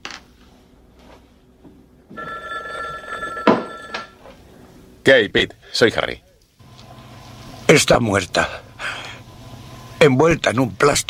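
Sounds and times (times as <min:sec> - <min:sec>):
black telephone with metallic bell ringing: 0:02.1 - 0:04.2
speech: 0:05.0 - 0:06.2, 0:07.7 - 0:08.9, 0:10.0 - 0:11.0.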